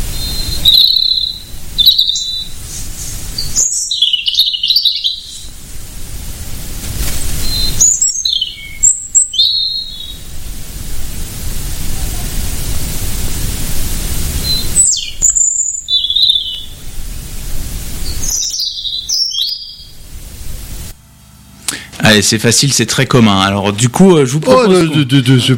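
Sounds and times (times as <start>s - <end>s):
high-pitched bird song with chirps and trills: 0.0s - 5.6s, 7.2s - 10.4s, 14.3s - 16.8s, 17.9s - 20.0s
steady loud hiss: 0.0s - 25.5s
speech: 22.1s - 25.5s
laughter: 24.3s - 25.5s.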